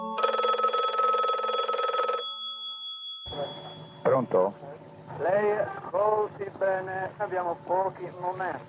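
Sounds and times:
telephone ringing with electronic trill: 0.1s - 4.5s
speech: 4.2s - 4.7s, 5.2s - 8.6s.

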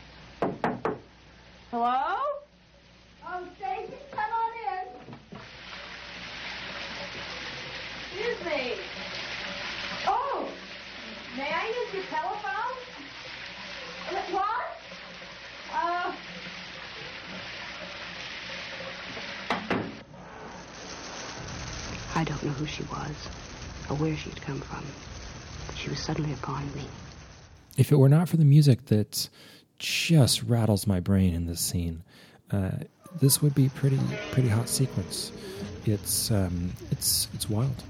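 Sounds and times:
sharp knock: 0.4s - 1.1s
speech: 1.7s - 2.2s, 11.4s - 12.6s, 22.2s - 25.2s, 25.8s - 27.1s, 27.8s - 37.8s
shower water spraying: 2.9s - 27.8s, 33.0s - 37.8s
voices speaking and murmuring: 32.5s - 37.8s.

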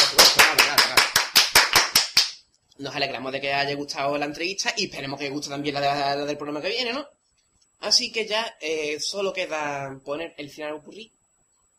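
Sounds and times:
steady rhythmic hand clapping: 0.0s - 2.4s
speech: 2.8s - 7.2s, 7.8s - 11.2s.

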